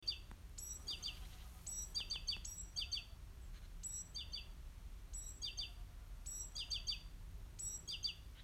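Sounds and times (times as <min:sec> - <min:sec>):
great tit giving bright high chirps with thin whistled notes: 0:00.0 - 0:04.5, 0:05.1 - 0:08.4.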